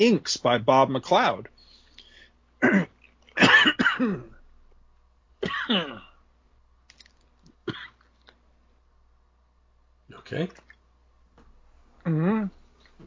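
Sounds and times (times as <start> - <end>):
speech: 0.0 - 1.5, 2.6 - 2.9, 4.0 - 4.3, 5.4 - 6.1, 10.2 - 10.6, 12.0 - 13.0
person coughing after swallowing wrong: 2.6 - 4.4, 5.4 - 6.2, 7.7 - 8.0
small gulp-like sound: 12.0 - 12.6.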